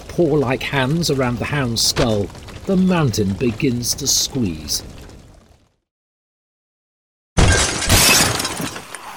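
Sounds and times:
speech: 0.2s - 5.0s
inn window glass shattering: 7.4s - 9.0s.

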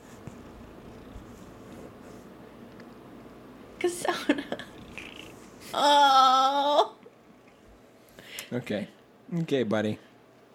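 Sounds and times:
rustling and brushing as cat presses close: 0.0s - 2.7s
cat purring: 0.1s - 2.3s, 4.5s - 5.6s
speech: 3.8s - 4.7s, 5.7s - 7.0s, 8.5s - 10.1s.

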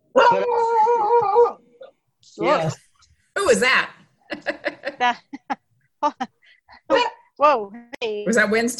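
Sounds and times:
dog howling bark: 0.1s - 1.6s
speech: 0.3s - 0.7s, 2.4s - 2.8s, 3.5s - 6.3s, 6.9s - 8.7s.

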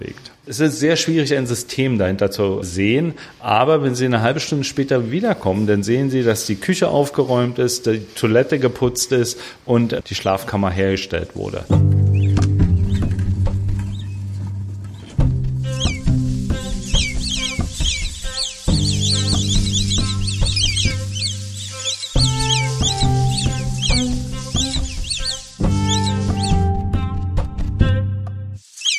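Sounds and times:
speech: 0.0s - 11.9s
low sustained musical tones: 11.7s - 27.2s
naked mole-rats squeaking and chirping in a burrow: 12.1s - 26.7s, 28.7s - 28.9s.

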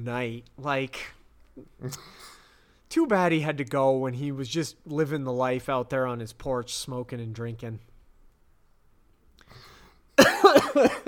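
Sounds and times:
speech: 0.0s - 7.9s, 10.8s - 11.0s
person coughing after swallowing saliva wrong: 10.2s - 11.0s.

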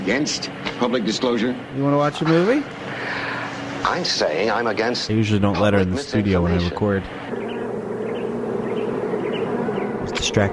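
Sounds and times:
speech: 0.1s - 7.4s, 10.2s - 10.5s
many bees buzzing around a hive: 2.3s - 10.5s.

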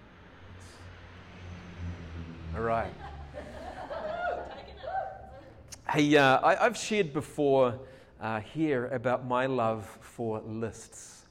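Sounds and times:
airplane engine rumble passing overhead: 0.0s - 4.6s
speech: 2.6s - 3.1s, 5.9s - 11.2s
laughter: 2.6s - 5.6s.

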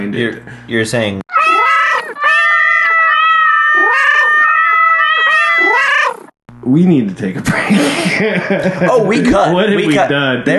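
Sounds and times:
speech: 0.1s - 1.2s, 6.7s - 10.5s
cat meowing loudly: 1.3s - 6.3s
laughter: 7.4s - 9.7s.

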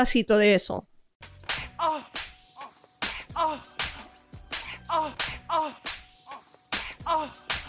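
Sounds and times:
speech: 0.0s - 0.9s, 7.1s - 7.4s
face slaps: 1.4s - 2.4s, 3.0s - 7.6s
pained vocal yelps and grunts: 1.7s - 4.0s, 4.8s - 7.6s.

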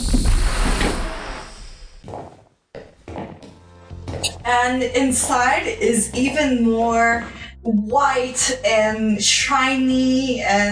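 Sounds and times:
door pushed open with a rumbling swoosh: 0.0s - 2.0s
speech: 4.5s - 10.6s.

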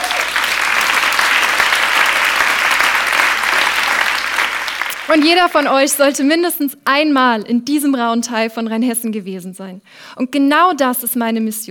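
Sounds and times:
audience applauding: 0.0s - 6.0s
speech: 5.1s - 11.6s.

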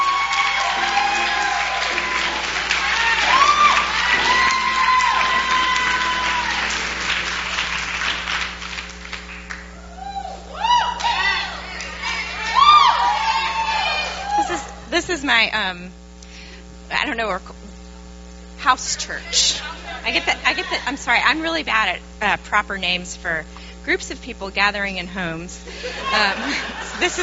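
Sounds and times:
crowd applause: 0.0s - 14.8s
crowd cheering with whoops and high-pitched shouts: 0.0s - 14.9s, 19.1s - 21.0s, 25.8s - 27.2s
laughter: 14.1s - 15.1s, 18.9s - 21.5s, 25.6s - 27.2s
speech: 15.4s - 16.0s, 17.0s - 17.6s, 18.6s - 27.2s.

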